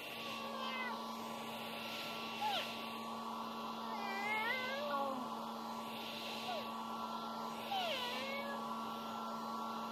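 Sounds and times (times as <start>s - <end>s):
hair dryer blowing: 0.0s - 9.9s
cat meowing: 0.5s - 1.0s, 3.9s - 5.1s, 7.8s - 8.6s.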